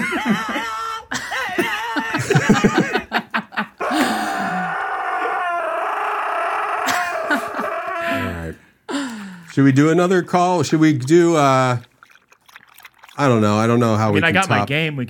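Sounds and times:
laughter: 0:00.0 - 0:04.6, 0:06.8 - 0:08.6
speech: 0:02.5 - 0:02.9, 0:09.6 - 0:11.9, 0:13.2 - 0:15.0
dog barking and howling with yelping bursts: 0:03.8 - 0:08.4.

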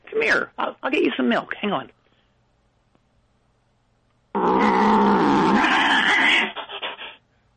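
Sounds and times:
speech: 0:00.2 - 0:02.0
alley cat roaring and snarling: 0:04.4 - 0:06.5.

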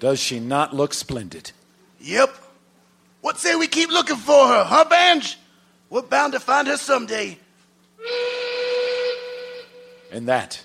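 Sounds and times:
speech: 0:00.0 - 0:02.4, 0:03.2 - 0:07.4, 0:10.1 - 0:10.6
locomotive train whistle: 0:08.0 - 0:10.2.

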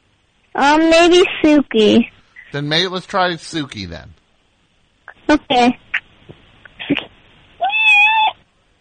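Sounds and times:
speech: 0:00.6 - 0:04.2, 0:05.3 - 0:05.8
female cat meowing: 0:07.6 - 0:08.4.

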